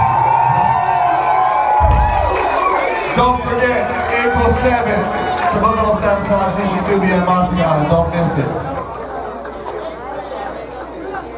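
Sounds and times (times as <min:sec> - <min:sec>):
audience cheering for a band: 0:00.0 - 0:08.6
speech: 0:03.2 - 0:08.7.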